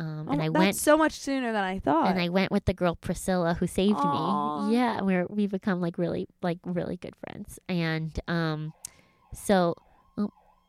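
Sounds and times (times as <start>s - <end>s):
speech: 0.0s - 10.4s
faint wavering siren: 8.7s - 10.6s.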